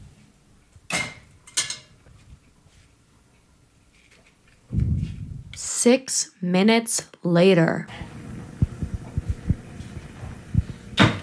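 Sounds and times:
speech: 5.8s - 8.0s
kettle water starting to simmer: 7.9s - 11.2s.

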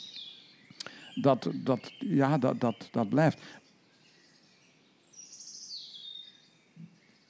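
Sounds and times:
crossbill calling from conifer trees in a garden: 0.7s - 3.7s
speech: 1.2s - 3.6s.

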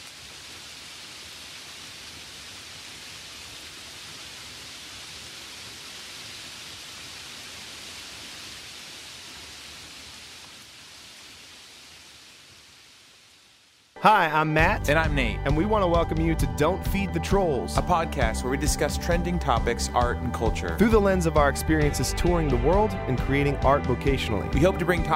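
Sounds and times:
rain falling: 0.0s - 14.4s
speech: 14.0s - 25.1s.

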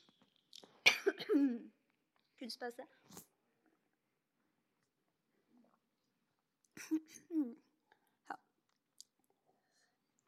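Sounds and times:
person coughing with something stuck in the throat: 0.8s - 1.7s
speech: 1.4s - 1.7s, 2.4s - 3.2s.

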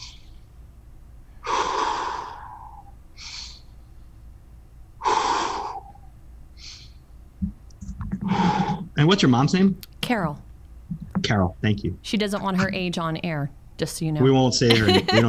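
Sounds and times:
deep breaths drawn and released slowly: 0.0s - 0.6s, 1.3s - 7.1s, 8.1s - 9.0s
low knocks: 7.4s - 9.0s, 10.9s - 11.4s
speech: 9.0s - 10.5s, 11.3s - 15.2s
laughter: 14.3s - 15.2s.

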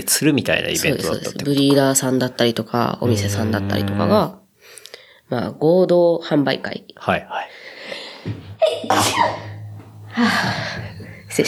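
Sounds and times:
speech: 0.0s - 4.4s, 5.3s - 9.5s, 10.2s - 11.4s
sneeze: 8.9s - 9.4s.

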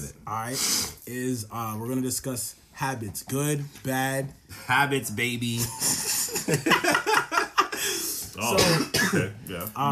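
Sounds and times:
speech: 0.2s - 7.2s, 8.4s - 9.9s
laughter: 5.6s - 8.1s
person with a cold clearing throat: 8.4s - 9.4s
person with a cold coughing raspily: 8.4s - 9.4s.

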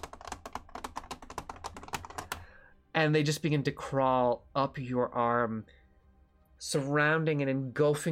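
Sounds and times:
rapid irregular insectoid scarab clicking: 0.0s - 2.5s
speech: 3.0s - 5.8s, 6.6s - 8.0s.

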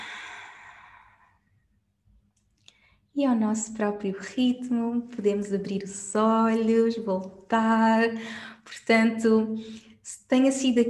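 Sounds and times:
slow deep exhale during a guided breathing exercise: 0.0s - 1.5s
speech: 3.2s - 10.8s.

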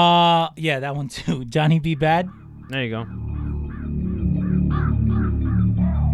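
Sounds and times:
speech: 0.0s - 3.3s
crow cawing: 1.5s - 6.1s
loud droning entrance music track with heavy low-end: 1.9s - 6.1s.

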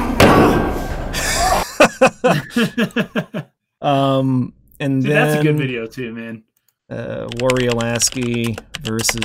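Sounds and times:
head hitting a table with a heavy thud: 0.2s - 0.8s
laughter: 1.1s - 3.5s
speech: 2.2s - 9.2s.

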